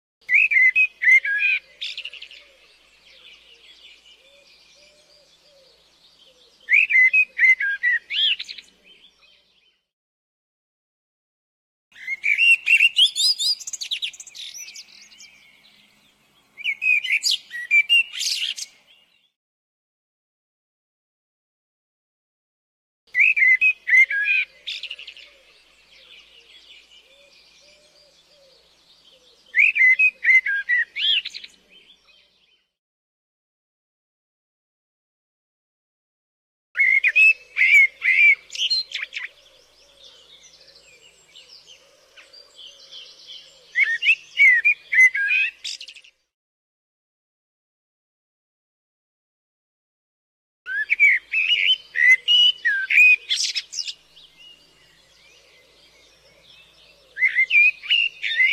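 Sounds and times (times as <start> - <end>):
blackbird singing: 0.2 - 9.9, 11.9 - 19.4, 23.1 - 32.7, 36.8 - 46.3, 50.7 - 58.5.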